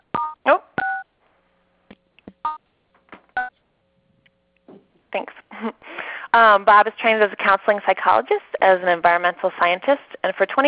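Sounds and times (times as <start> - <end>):
two-tone telephone keypad beeps: 0.2 - 1.1
speech: 5.2 - 10.6.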